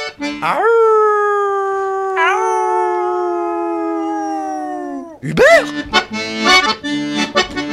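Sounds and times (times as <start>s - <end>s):
speech: 0.4s - 0.9s, 5.2s - 7.6s
small dog howling in a big city: 0.5s - 5.2s.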